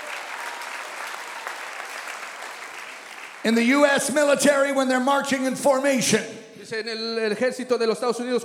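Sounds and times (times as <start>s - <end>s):
congregation applauding: 0.0s - 4.3s
speech: 3.4s - 8.4s.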